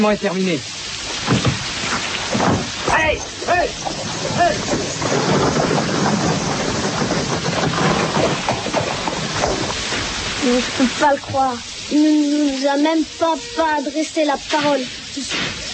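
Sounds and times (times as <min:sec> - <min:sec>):
speech: 0:00.0 - 0:01.4, 0:02.4 - 0:06.0, 0:10.4 - 0:15.6
heavy rain pouring: 0:00.0 - 0:15.7
indistinct voices: 0:02.9 - 0:04.8, 0:10.4 - 0:15.7.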